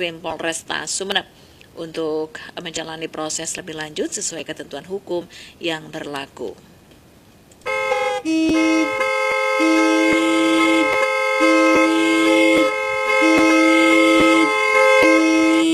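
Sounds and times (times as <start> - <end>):
speech: 0.0 - 6.7, 8.2 - 10.1
loud vehicle horn honking: 7.6 - 15.7.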